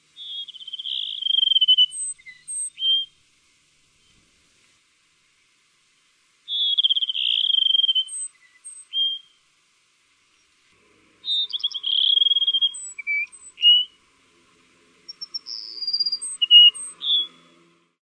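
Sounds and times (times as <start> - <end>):
Cassin's sparrow song: 0.1 - 3.2, 6.0 - 9.5, 11.2 - 14.1, 14.9 - 17.8.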